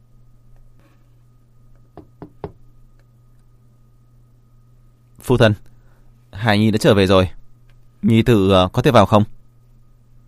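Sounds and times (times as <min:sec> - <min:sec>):
low steady hum: 0:00.0 - 0:10.2
knocking on a door: 0:02.0 - 0:02.6
speech: 0:05.3 - 0:05.7, 0:06.4 - 0:07.4, 0:08.0 - 0:09.4.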